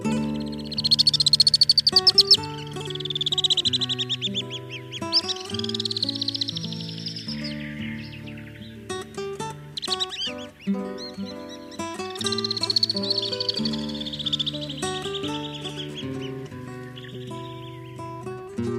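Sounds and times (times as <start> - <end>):
alpine swifts calling with shrill rapid trilling: 0.1 - 18.6
steady tonal hum: 0.3 - 18.2.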